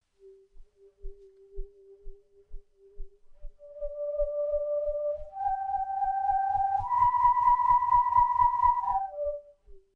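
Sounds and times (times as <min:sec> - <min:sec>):
tube spun to sound in the wind: 0:03.6 - 0:09.8.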